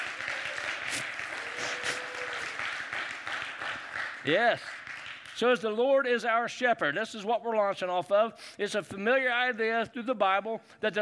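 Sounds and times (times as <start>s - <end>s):
room full of people clapping: 0.0s - 5.6s
speech: 4.2s - 4.8s, 5.4s - 11.0s.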